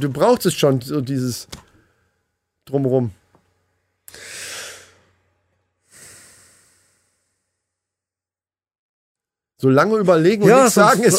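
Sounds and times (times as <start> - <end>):
speech: 0.0 - 1.6, 2.7 - 3.2, 9.6 - 11.1
person breathing in and out: 4.1 - 5.1, 5.8 - 7.7.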